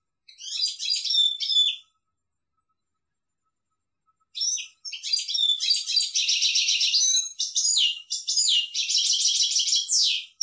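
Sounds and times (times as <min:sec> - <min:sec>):
European goldfinch song: 0:00.2 - 0:02.0, 0:04.1 - 0:10.4.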